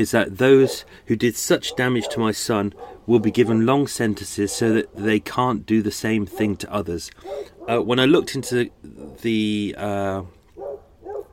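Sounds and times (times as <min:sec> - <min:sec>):
speech: 0:00.0 - 0:10.4
dog barking: 0:00.6 - 0:00.9, 0:01.7 - 0:03.6, 0:04.4 - 0:04.8, 0:06.3 - 0:06.6, 0:07.2 - 0:09.3, 0:10.6 - 0:11.3.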